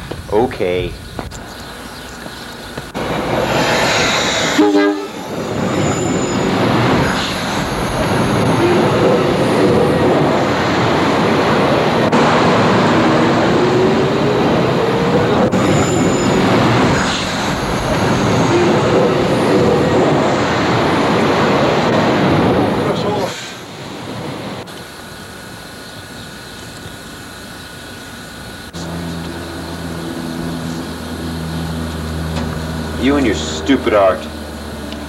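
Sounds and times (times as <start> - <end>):
speech: 0.3 - 1.0
train rolling past on railway tracks: 1.3 - 35.0
brief horn-like tone: 3.6 - 6.5.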